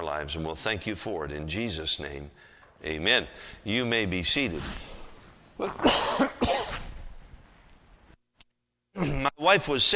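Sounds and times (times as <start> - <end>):
speech: 0.2 - 4.9, 5.6 - 6.6, 9.0 - 9.9
person coughing harshly: 5.7 - 6.9.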